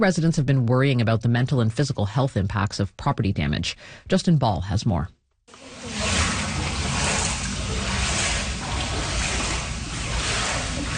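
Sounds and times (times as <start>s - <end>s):
speech: 0.0s - 5.8s
water sloshing in a flooded basement after a rainstorm in Ottawa: 5.5s - 10.9s.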